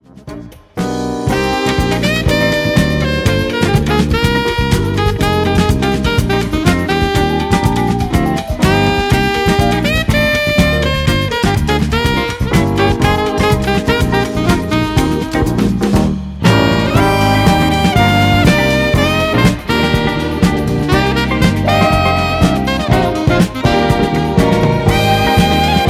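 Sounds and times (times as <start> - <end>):
jazz saxophone: 0.0 - 25.8.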